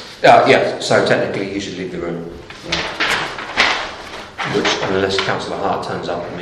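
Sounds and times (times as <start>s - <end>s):
speech: 0.2s - 2.8s, 4.5s - 6.3s
door being shut and locked: 2.6s - 5.0s.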